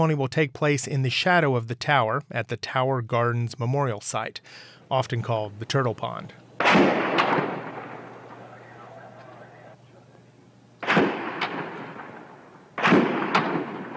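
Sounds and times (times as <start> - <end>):
speech: 0.0 - 7.1
low hum: 0.0 - 13.9
sharp loud gunshot-like cracks in an archival news recording: 6.6 - 8.4, 10.8 - 13.9.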